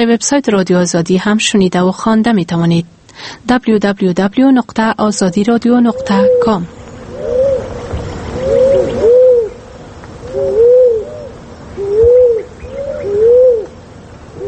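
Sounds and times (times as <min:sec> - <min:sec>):
speech: 0:00.0 - 0:07.4
turtle dove cooing: 0:05.2 - 0:14.4.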